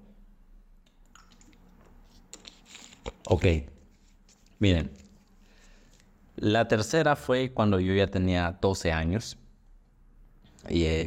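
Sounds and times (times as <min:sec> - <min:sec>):
low hum: 0:00.0 - 0:11.0
person sipping and swallowing water: 0:01.1 - 0:03.3
speech: 0:03.3 - 0:03.7, 0:04.6 - 0:05.0, 0:06.4 - 0:09.4, 0:10.6 - 0:11.0.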